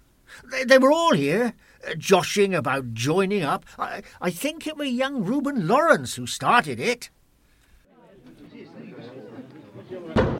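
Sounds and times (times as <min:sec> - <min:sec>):
speech: 0:00.4 - 0:07.2
crowd chatter in a pub: 0:07.9 - 0:10.3
swollen pub door being forced open with a heavy thudding scrape: 0:10.2 - 0:10.3.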